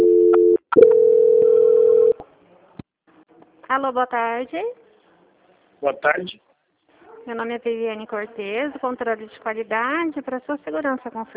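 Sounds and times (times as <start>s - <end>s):
telephone call transfer tone: 0.0s - 2.2s
speech: 3.8s - 4.8s, 5.8s - 6.5s, 7.2s - 11.3s.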